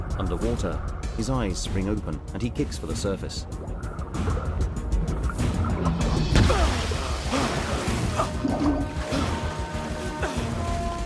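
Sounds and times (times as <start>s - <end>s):
speech: 0.2s - 4.4s
water splashing from a man swimming through an ice-flecked river: 3.6s - 10.9s.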